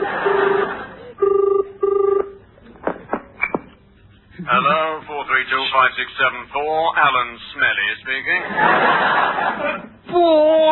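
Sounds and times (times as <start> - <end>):
laughter: 0.0 - 1.1, 8.3 - 10.0
telephone line buzzing ring tones: 0.1 - 2.4
speech: 4.7 - 10.6.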